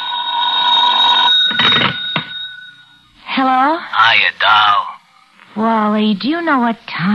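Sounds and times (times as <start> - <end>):
loud telephone bell ringing: 0.0 - 3.0
speech: 3.4 - 4.9, 5.6 - 7.1.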